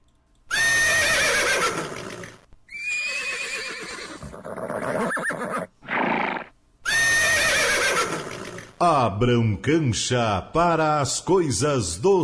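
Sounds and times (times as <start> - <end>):
herd of horses neighing: 0.5 - 8.8
horse snorting: 3.5 - 6.5, 7.8 - 8.7
speech: 8.8 - 12.2.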